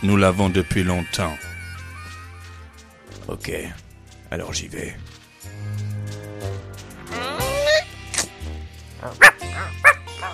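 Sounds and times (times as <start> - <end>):
speech: 0.0 - 1.5, 3.3 - 5.2
dog whimpering: 7.1 - 7.9, 9.0 - 10.3
dog barking in sharp high yaps: 9.0 - 10.3.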